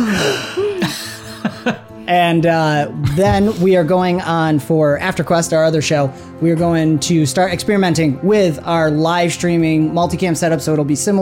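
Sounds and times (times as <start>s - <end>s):
person letting out an exaggerated dramatic gasp: 0.0s - 1.2s
laughter: 0.0s - 1.9s
speech: 1.7s - 11.2s.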